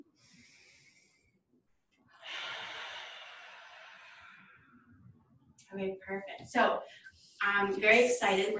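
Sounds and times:
deep centering breath in and out: 0.1 - 1.5, 2.2 - 4.9
speech: 5.8 - 8.5.

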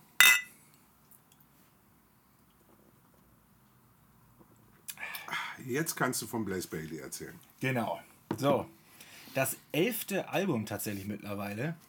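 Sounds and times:
beer glasses clinking in a toast: 0.2 - 0.5
speech: 5.7 - 11.8.

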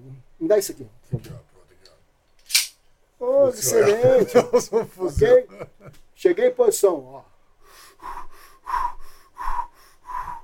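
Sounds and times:
speech: 0.1 - 1.5, 3.2 - 7.3
laughter: 3.6 - 6.0
deep abdominal breathing of a person lying down: 7.6 - 10.4.

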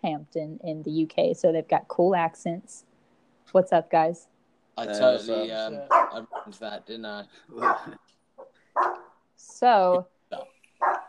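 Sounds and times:
speech: 0.0 - 2.9, 3.5 - 8.0, 8.8 - 10.5
pet dog giving a sharp high ringing bark: 5.9 - 6.6, 7.6 - 8.0, 8.8 - 9.1, 10.8 - 11.0.

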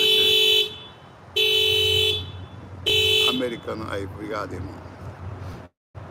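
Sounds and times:
car alarm honking after door opened: 0.0 - 3.8
speech: 3.6 - 4.9.

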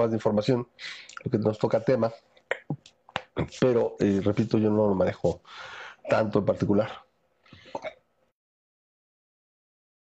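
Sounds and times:
speech: 0.0 - 7.0, 7.7 - 8.0
cough or throat clearing: 7.6 - 8.0.

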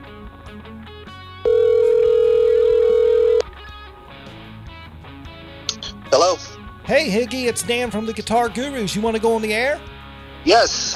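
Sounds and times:
phone line ringback tone: 1.4 - 3.4
speech: 6.9 - 10.9.

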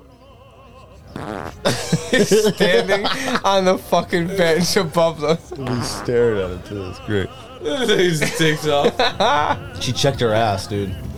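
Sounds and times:
laughter: 0.0 - 11.1
loud fart: 1.1 - 1.7, 5.6 - 6.2
speech: 1.6 - 11.0.

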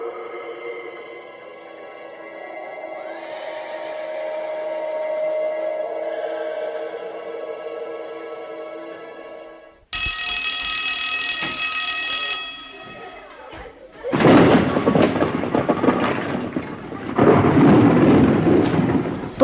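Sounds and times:
ringing alarm-like tone: 10.0 - 13.6
heavy thunder rumbling: 14.1 - 19.4.

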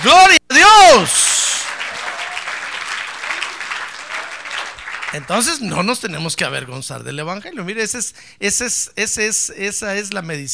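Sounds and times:
speech: 0.0 - 0.4, 5.1 - 10.5
audience applauding: 1.2 - 5.8.

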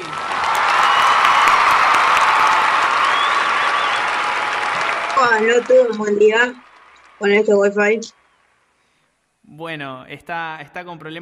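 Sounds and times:
faint cheers: 0.0 - 7.2
crowd applauding for a person being introduced: 0.0 - 7.6
speech: 5.3 - 6.6, 7.2 - 8.2, 9.5 - 11.2.

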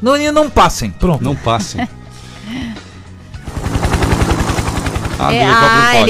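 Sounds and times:
speech: 0.0 - 2.7, 5.2 - 6.0
helicopter rotor thudding: 3.4 - 6.0.

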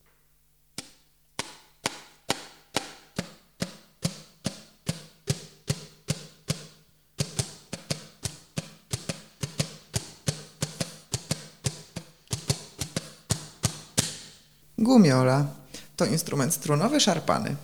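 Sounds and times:
finger striking stretched tape strip: 0.7 - 14.5
speech: 14.9 - 17.6.

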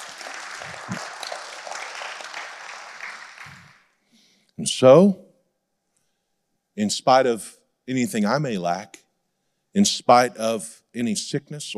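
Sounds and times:
audience clapping hands: 0.0 - 3.9
speech: 4.6 - 5.2, 6.8 - 9.0, 9.8 - 11.7.

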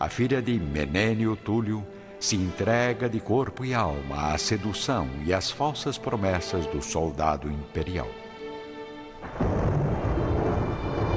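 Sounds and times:
speech: 0.0 - 8.2
deep thunder rumbling on a stormy night: 9.2 - 11.1.

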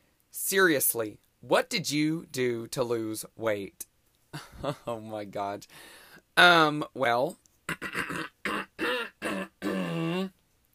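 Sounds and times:
speech: 0.5 - 8.3
person with a lot of phlegm clearing their throat: 7.7 - 10.3.

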